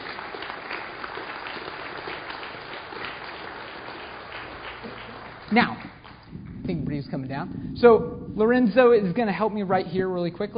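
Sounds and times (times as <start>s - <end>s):
audience applause at a live morning presentation: 0.0s - 6.3s
speech: 5.5s - 5.9s, 6.7s - 10.5s.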